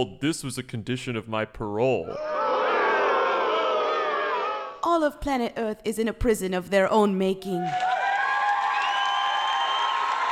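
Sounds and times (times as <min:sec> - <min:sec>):
speech: 0:00.0 - 0:02.4, 0:04.8 - 0:07.9
large audience cheering and booing: 0:02.1 - 0:04.8, 0:07.6 - 0:10.3.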